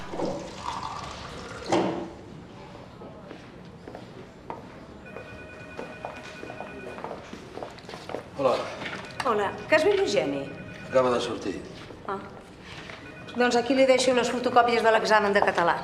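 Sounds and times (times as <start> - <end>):
water pouring into a glass: 0.0 - 1.7
speech: 9.3 - 12.4, 13.4 - 15.8.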